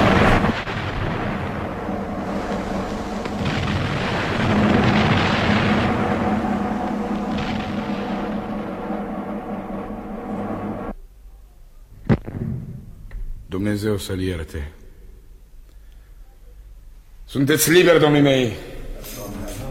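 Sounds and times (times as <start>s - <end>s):
salvo of gunfire at a burial: 0.0s - 10.9s
speech: 13.7s - 14.8s, 17.3s - 18.7s.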